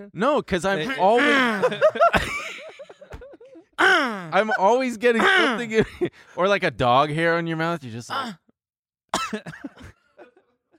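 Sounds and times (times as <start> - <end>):
speech: 0.0 - 2.4, 3.9 - 8.4, 9.3 - 9.9
laughter: 0.8 - 6.1
faint breathy sounds: 3.7 - 4.4
person coughing raspily: 5.2 - 6.0, 9.2 - 10.5.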